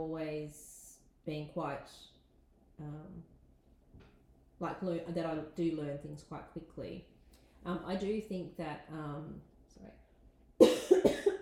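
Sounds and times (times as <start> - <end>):
speech: 0.0 - 2.1, 2.8 - 3.3, 4.6 - 10.0
person coughing from a tickle in the throat: 10.6 - 11.4.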